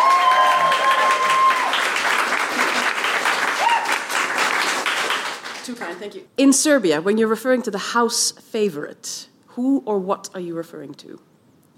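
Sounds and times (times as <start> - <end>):
faint whistles or cheers: 0.0 - 1.9, 3.5 - 4.1
audience applause from a sizable crowd: 0.0 - 6.0
speech: 6.0 - 11.3.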